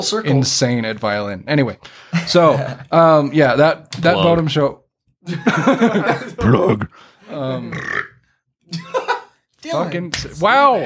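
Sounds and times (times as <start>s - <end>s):
speech: 0.0s - 8.1s, 9.6s - 10.8s
laughter: 2.1s - 2.9s, 5.3s - 7.0s, 8.7s - 9.3s
short vocal noise: 6.4s - 7.1s
loud burp: 6.4s - 8.2s.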